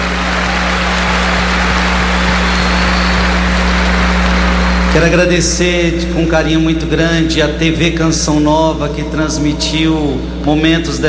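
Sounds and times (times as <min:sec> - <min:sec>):
dense applause from a large crowd at a vigil: 0:00.0 - 0:05.5
low hum: 0:00.0 - 0:11.0
speech: 0:05.0 - 0:11.0.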